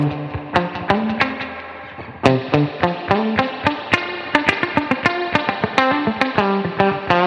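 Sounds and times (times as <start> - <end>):
electric guitar playing a melodic line through spring reverb pedal: 0.0 - 7.2.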